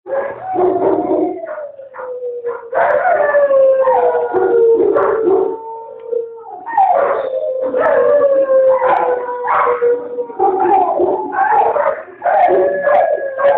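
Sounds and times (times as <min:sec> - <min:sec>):
dogs barking: 0:00.1 - 0:13.5.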